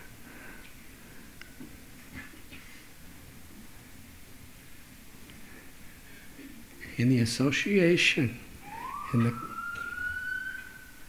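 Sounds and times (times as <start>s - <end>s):
speech: 7.0s - 8.4s, 9.1s - 9.5s
emergency vehicle siren wailing: 8.6s - 11.0s.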